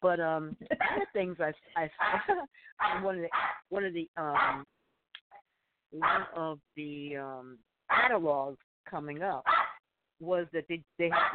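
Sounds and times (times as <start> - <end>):
speech: 0.0 - 4.7, 5.9 - 9.6, 10.2 - 11.3
dog barking during a phone call: 2.0 - 3.6, 4.4 - 4.6, 6.0 - 6.4, 9.5 - 9.8, 11.1 - 11.3
dog giving faint short yips: 2.8 - 3.6, 4.4 - 4.6, 6.0 - 6.4, 9.5 - 9.8, 11.1 - 11.3.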